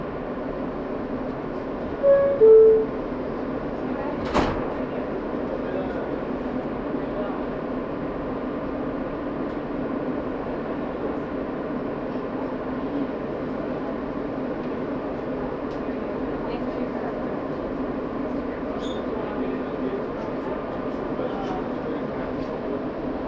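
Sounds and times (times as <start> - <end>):
subway train rumbling through a tunnel: 0.0 - 23.2
short tones: 2.0 - 3.0.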